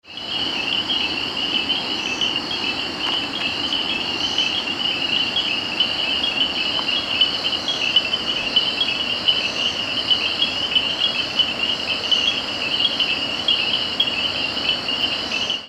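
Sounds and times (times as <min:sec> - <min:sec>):
African night ambience: 0:00.0 - 0:15.6.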